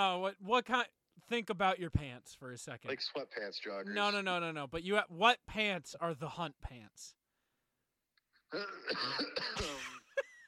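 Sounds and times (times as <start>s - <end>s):
speech: 0.0s - 7.2s, 8.5s - 10.3s
throat clearing: 8.5s - 9.8s
raspy fit of coughing: 8.5s - 10.1s.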